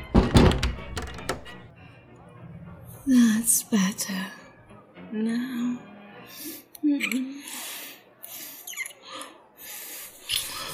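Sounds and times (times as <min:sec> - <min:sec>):
heavy door thunks: 0:00.0 - 0:01.6
speech: 0:03.1 - 0:04.4, 0:05.1 - 0:07.7.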